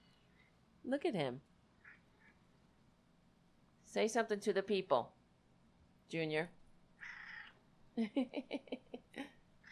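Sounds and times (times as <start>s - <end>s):
speech: 0.8s - 1.5s, 3.9s - 5.2s, 6.1s - 7.1s, 8.0s - 9.3s
cat low growly yowl: 7.0s - 7.6s
laughter: 8.0s - 9.3s.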